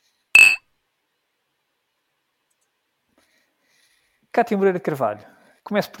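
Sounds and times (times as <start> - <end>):
glasses clinking in a toast: 0.4 - 0.6
speech: 4.4 - 5.9.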